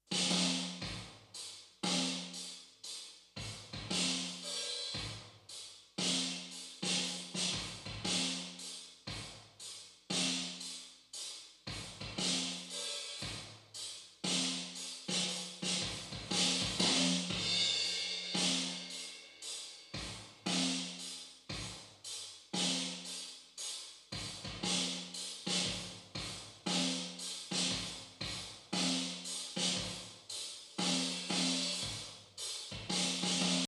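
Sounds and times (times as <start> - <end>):
drum reverb only: 0.0 - 33.6.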